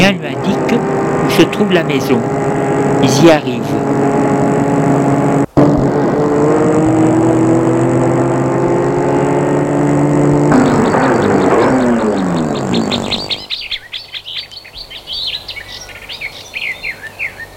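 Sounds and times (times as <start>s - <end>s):
birds chirping and tweeting: 0.0s - 5.6s, 7.7s - 17.5s
car engine droning while driving: 0.0s - 13.6s
speech: 0.1s - 0.6s, 1.4s - 4.2s.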